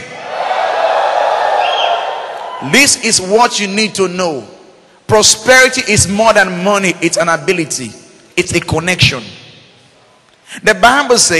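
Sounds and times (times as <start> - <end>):
large crowd screaming and cheering: 0.0 - 2.7
speech: 2.6 - 9.4, 10.5 - 11.3.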